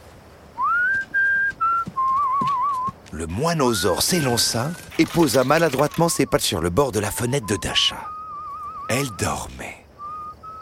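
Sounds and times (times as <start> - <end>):
person whistling a short song melody: 0.6 - 2.9, 6.1 - 9.0, 10.0 - 10.6
speech: 3.2 - 8.1, 8.9 - 9.8.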